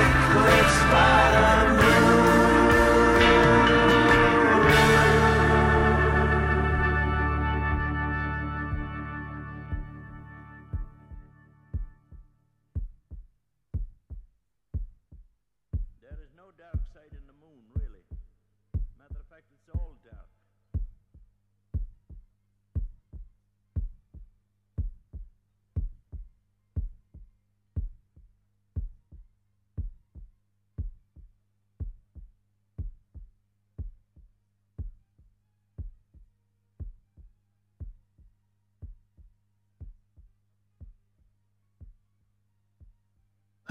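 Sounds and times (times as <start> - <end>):
heartbeat closing a rock song: 0.0 - 5.0, 9.7 - 10.0, 10.7 - 42.2, 42.8 - 43.6
quiet low drone: 0.0 - 11.4.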